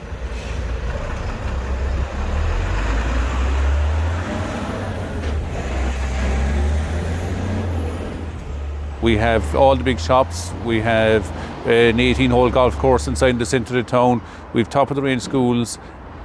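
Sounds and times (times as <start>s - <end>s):
heavy town traffic rumbling: 0.0s - 16.2s
truck and bus engines droning: 0.0s - 16.2s
truck and bus air brakes hissing: 0.2s - 0.9s
speech: 9.1s - 16.0s.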